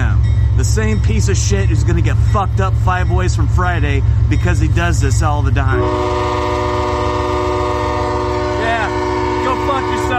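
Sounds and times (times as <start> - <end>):
rhythmic low rumble of the passing train: 0.0 - 10.1
speech: 0.6 - 6.8
train horn blaring in a multi-tone chord: 5.6 - 10.1.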